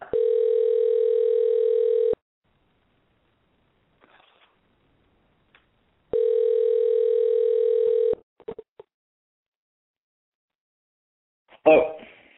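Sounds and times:
telephone tones while dialing out: 0:00.1 - 0:02.2, 0:06.2 - 0:08.2.

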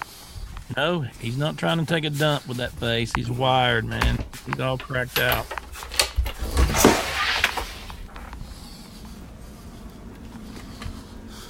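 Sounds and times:
man breathing heavily: 0:00.0 - 0:03.0, 0:08.0 - 0:11.4
low hum: 0:00.0 - 0:11.4
speech: 0:00.7 - 0:05.6.

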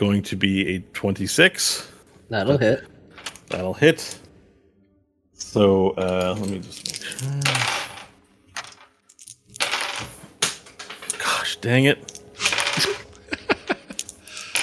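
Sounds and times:
speech: 0:00.0 - 0:02.9, 0:03.5 - 0:04.2, 0:05.4 - 0:07.8, 0:11.6 - 0:12.2
dice clattering and bouncing across a hard table during a tabletop role-playing game: 0:03.2 - 0:03.6, 0:06.0 - 0:11.4, 0:12.0 - 0:13.1, 0:13.9 - 0:14.6
person muttering: 0:07.0 - 0:07.7
laughter: 0:12.8 - 0:14.3.

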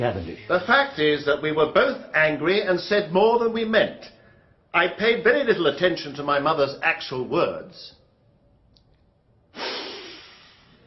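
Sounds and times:
speech: 0:00.0 - 0:08.0
incredulous sniff through the nose: 0:09.5 - 0:10.8.

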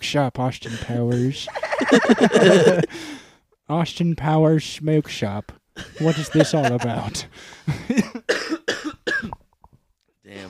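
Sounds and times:
speech: 0:00.1 - 0:08.6
two people coughing: 0:00.7 - 0:02.9, 0:05.8 - 0:06.8, 0:07.8 - 0:09.4
laughter: 0:00.7 - 0:03.0, 0:05.8 - 0:08.2.

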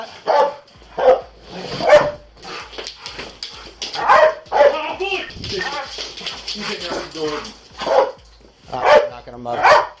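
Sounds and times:
dog barking: 0:00.0 - 0:02.3, 0:04.0 - 0:04.8, 0:07.8 - 0:09.9.

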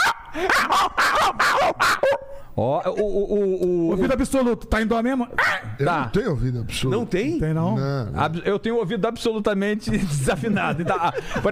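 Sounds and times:
laughter: 0:00.0 - 0:02.4, 0:09.9 - 0:11.5
person imitating small pinscher dog yappy barking: 0:00.0 - 0:03.5, 0:05.4 - 0:05.8
speech: 0:00.4 - 0:11.5.

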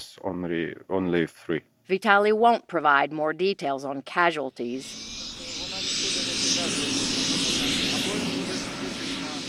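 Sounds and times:
speech: 0:00.0 - 0:05.4
military helicopters taking off after fog clears: 0:04.5 - 0:09.4.

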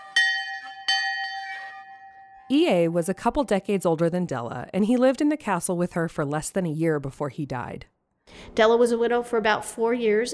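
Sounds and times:
large silver bell outside a castle ringing: 0:00.0 - 0:02.9
speech: 0:02.5 - 0:10.3.

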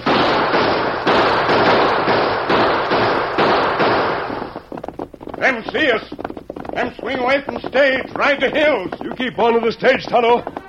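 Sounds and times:
gunshots in a Western shootout: 0:00.0 - 0:04.8
speech: 0:05.4 - 0:06.2, 0:06.8 - 0:10.6.

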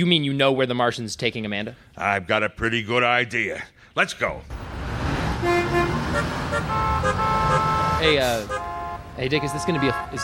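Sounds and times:
speech: 0:00.0 - 0:04.6, 0:05.4 - 0:10.2
car horns honking in traffic: 0:04.5 - 0:10.2
dense rumble of road traffic: 0:04.5 - 0:10.2.

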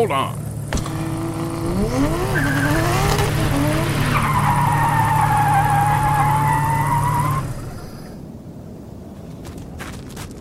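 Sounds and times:
speech: 0:00.0 - 0:00.4, 0:01.7 - 0:02.6
car engine rumble: 0:00.0 - 0:08.6
car tires screeching while braking hard: 0:00.3 - 0:08.2.

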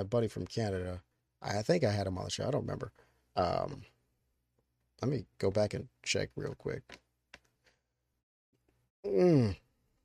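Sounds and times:
speech: 0:00.0 - 0:03.9, 0:05.0 - 0:07.0, 0:09.0 - 0:09.6
long yawn with descending voiced moan: 0:09.0 - 0:09.7.

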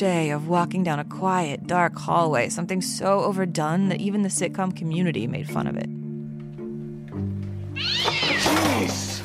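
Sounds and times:
speech: 0:00.0 - 0:06.0
cat meowing and yowling: 0:07.8 - 0:09.0.

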